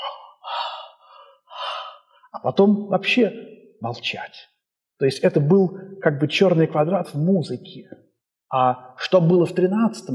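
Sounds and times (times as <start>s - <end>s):
deliberate breathing imitating a silent choir: 0.0s - 2.4s
speech: 2.3s - 10.1s.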